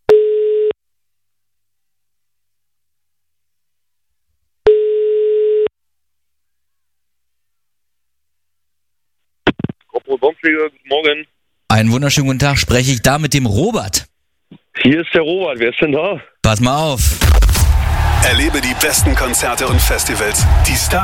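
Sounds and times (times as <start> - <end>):
telephone ringing tone while a call is placed: 0.1 - 0.8, 4.7 - 5.7
speech: 10.1 - 14.1, 14.8 - 17.5, 18.2 - 21.0.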